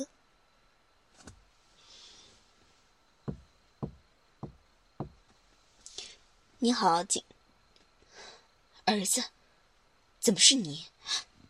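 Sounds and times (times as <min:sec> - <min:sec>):
knocks on a door: 0:03.3 - 0:05.2
speech: 0:06.6 - 0:07.3, 0:08.9 - 0:09.4, 0:10.2 - 0:11.3.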